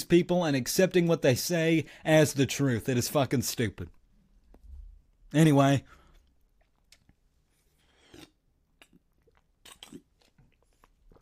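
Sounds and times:
speech: 0.0 - 4.0, 5.3 - 6.0
person sipping a drink: 6.1 - 11.2.

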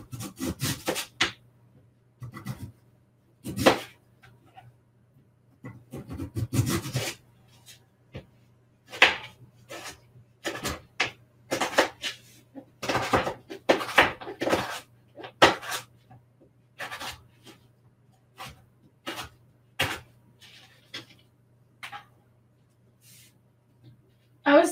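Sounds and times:
knife slicing half of a sweet potato into very thin slices for fries: 0.0 - 1.4, 3.4 - 4.0, 5.7 - 7.2, 8.9 - 15.9, 16.8 - 17.6, 18.3 - 20.1.

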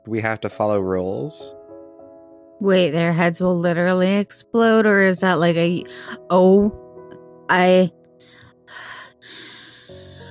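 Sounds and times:
speech: 0.0 - 1.6, 2.6 - 6.8, 7.5 - 9.4
heavy ragged breathing: 8.2 - 10.2
person gasping: 8.3 - 10.2.

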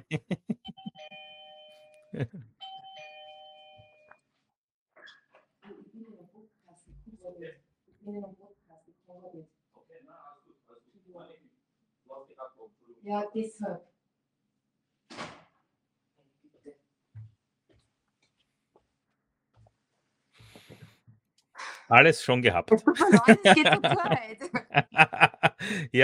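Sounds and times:
laughter: 0.0 - 1.2, 2.2 - 2.4, 21.9 - 26.0
speech: 0.1 - 0.5, 21.9 - 25.0, 25.6 - 26.0
two-tone doorbell chime: 0.8 - 4.1.

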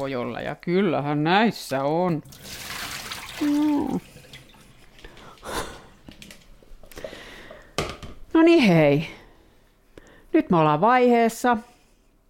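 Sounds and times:
speech: 0.0 - 2.7, 3.4 - 4.1, 8.4 - 9.2, 10.3 - 11.7
cold tap water running and splashing as something is rinsed: 2.2 - 5.4
water sloshing: 2.2 - 6.6.

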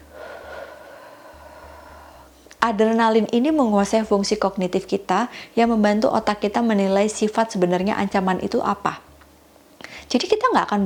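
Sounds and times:
long breath drawn in through the nose: 0.0 - 2.4
speech: 2.6 - 9.1, 10.1 - 10.8.

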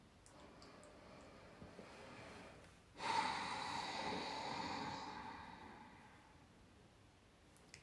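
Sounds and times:
deep breath drawn in through the nose during a guided breathing exercise: 0.9 - 6.4.

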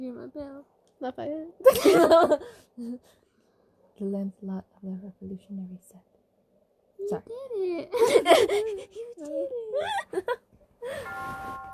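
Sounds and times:
speech: 0.3 - 3.2, 4.0 - 6.1, 7.0 - 11.7
two-note ding-dong doorbell chime: 11.0 - 11.7.

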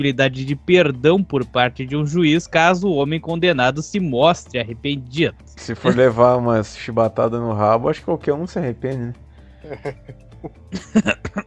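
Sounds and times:
speech: 0.0 - 11.4
voiced laugh-like sound: 5.7 - 6.1, 9.6 - 11.4
person coughing: 9.7 - 10.2, 10.8 - 11.4.

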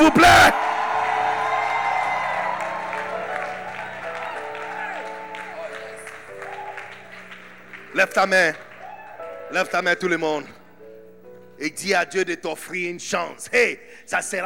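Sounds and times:
speech: 0.0 - 0.6, 8.0 - 8.7, 9.5 - 10.6, 11.6 - 14.4
large crowd shouting joyfully with whoops: 0.0 - 7.1
large crowd applauding: 0.0 - 10.5.

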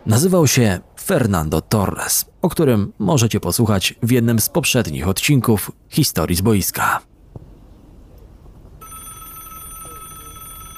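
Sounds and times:
speech: 0.0 - 7.1
telephone ringing with a bright electronic ring: 8.8 - 10.7.

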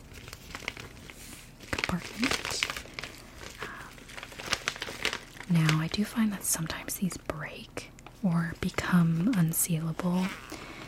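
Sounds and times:
pink zip travel bags crinkling and rustling as handled: 0.0 - 6.4, 8.6 - 10.8
speech: 1.9 - 2.4, 5.5 - 10.6.

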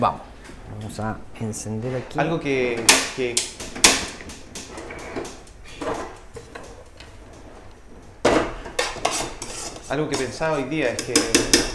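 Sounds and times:
speech: 0.0 - 3.6, 9.9 - 11.7
kitchen pots, pans and cutlery played like instruments in an improvised session: 2.7 - 6.8, 8.2 - 11.7.

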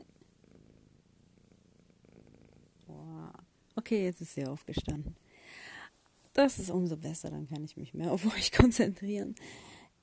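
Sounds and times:
cat purring: 0.0 - 3.7
speech: 3.8 - 5.2, 6.4 - 9.8.

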